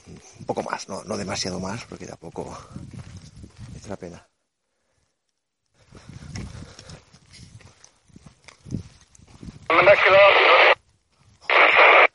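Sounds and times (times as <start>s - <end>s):
speech: 0.5s - 3.1s, 3.8s - 4.3s, 9.8s - 10.7s
radio interference static hiss and crackle: 9.7s - 10.8s, 11.5s - 12.1s.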